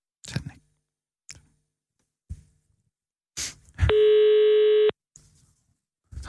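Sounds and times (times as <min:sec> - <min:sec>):
phone ringback tone of an unanswered call: 0:03.9 - 0:04.9.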